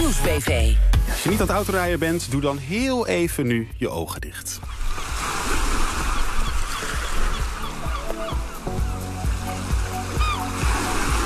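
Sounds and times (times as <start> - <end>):
speech: 0.1 - 5.0
honking bird calls: 4.6 - 11.2
sea waves breaking on a beach: 4.6 - 11.2.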